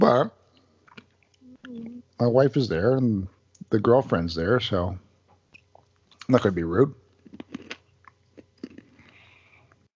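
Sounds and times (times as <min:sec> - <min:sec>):
speech: 0:00.1 - 0:00.4, 0:01.7 - 0:05.0, 0:06.3 - 0:07.7
crunching of candied nuts being chewed: 0:07.2 - 0:09.2
faint sniff: 0:09.0 - 0:09.7.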